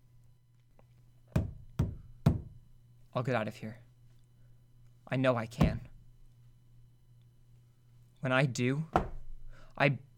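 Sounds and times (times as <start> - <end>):
low steady hum: 0.0 - 10.1
heavy thuds on a door: 1.4 - 2.6, 5.6 - 5.9, 8.9 - 9.3
speech: 3.2 - 3.9, 5.1 - 5.9, 8.2 - 9.1, 9.8 - 10.1.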